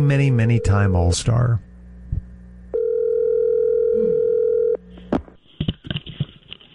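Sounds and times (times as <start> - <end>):
speech: 0.0 - 1.7
telephone dial tone: 2.7 - 4.8.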